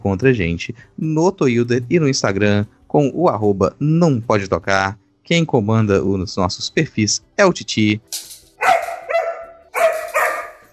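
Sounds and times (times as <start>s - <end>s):
speech: 0.0s - 8.3s
dog barking: 8.6s - 10.7s.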